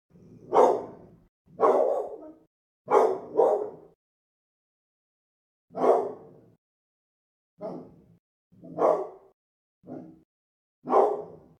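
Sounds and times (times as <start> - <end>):
pit bull dog: 0.5 - 4.0, 5.8 - 6.3, 7.6 - 8.0, 8.6 - 9.3, 9.9 - 10.2, 10.8 - 11.4.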